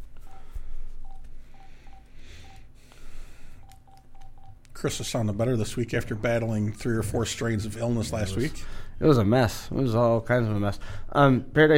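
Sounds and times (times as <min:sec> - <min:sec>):
telephone keypad beeps dialing a phone number: 0:01.0 - 0:02.7, 0:03.6 - 0:04.6
speech: 0:04.8 - 0:11.7.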